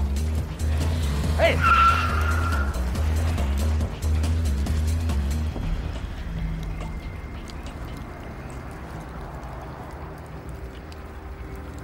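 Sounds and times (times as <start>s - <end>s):
black Fiat car engine roaring while speeding away: 0.0s - 11.8s
speech: 1.4s - 1.8s.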